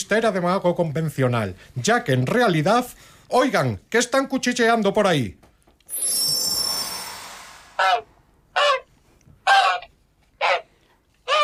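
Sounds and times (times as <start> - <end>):
speech: 0.0 - 6.4
shimmering whoosh: 5.9 - 8.2
goose honking: 11.3 - 11.4.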